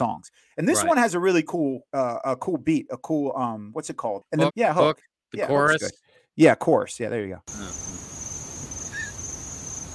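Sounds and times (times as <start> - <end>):
speech: 0.0 - 7.9
crickets chirping: 7.5 - 9.9.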